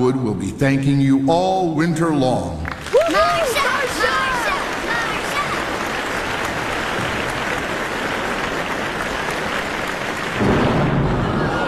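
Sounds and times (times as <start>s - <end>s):
speech: 0.0s - 3.8s
heavy rain: 4.1s - 11.6s
deep loud thunder rumbling: 10.3s - 11.6s.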